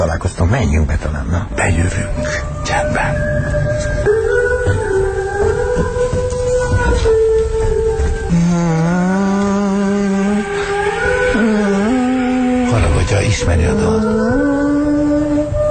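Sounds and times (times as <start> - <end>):
speech: 0.0 - 4.9, 13.4 - 14.4
car engine driving in a film: 0.0 - 15.7.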